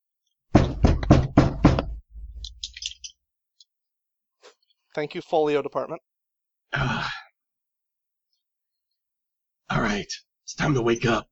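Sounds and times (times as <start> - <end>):
heavy rapid pounding on a door: 0.5 - 2.7
speech: 5.0 - 6.1, 6.7 - 7.2, 9.8 - 11.3.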